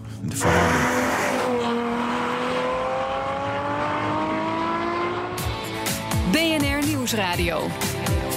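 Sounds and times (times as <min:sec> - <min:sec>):
speech: 0:00.2 - 0:00.6, 0:07.1 - 0:08.2
powerful drift car engine roaring: 0:00.2 - 0:06.3
drifting car tires squealing: 0:00.4 - 0:02.4.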